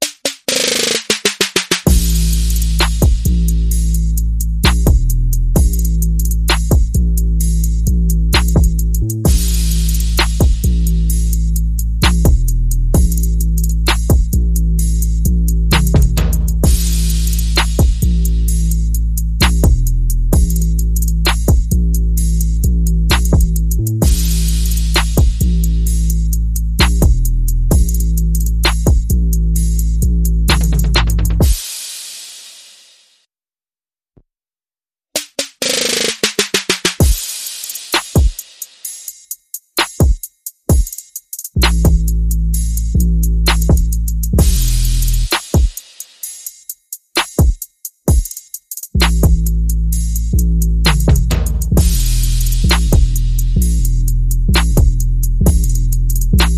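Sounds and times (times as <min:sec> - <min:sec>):
percussion: 0:00.0 - 0:33.0, 0:35.2 - 0:56.5
bass: 0:01.9 - 0:31.5, 0:41.6 - 0:45.4, 0:49.0 - 0:56.5.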